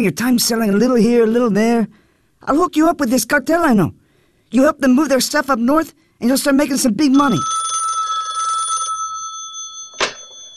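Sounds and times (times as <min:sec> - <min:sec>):
speech: 0:00.0 - 0:07.6
telephone ringing with a trilling electronic bell: 0:07.1 - 0:10.5.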